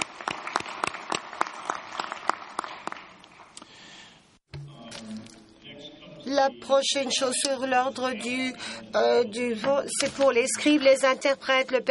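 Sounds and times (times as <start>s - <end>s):
audience applause affirming a resolution: 0.0s - 3.6s
speech: 6.3s - 11.9s.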